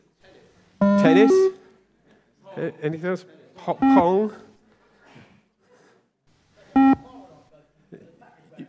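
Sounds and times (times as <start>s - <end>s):
electronic beep from a fitness bleep test: 0.8s - 1.6s, 3.8s - 4.2s, 6.8s - 7.1s
speech: 1.0s - 1.6s, 2.6s - 4.5s.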